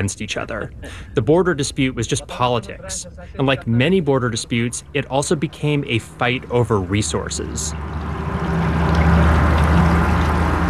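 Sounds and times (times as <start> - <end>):
speech: 0.0 - 8.2
river water flowing: 5.6 - 10.6.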